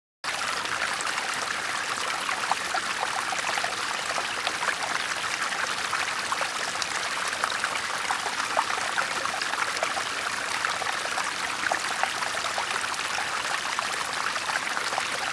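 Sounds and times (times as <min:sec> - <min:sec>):
small water stream: 0:00.2 - 0:15.3.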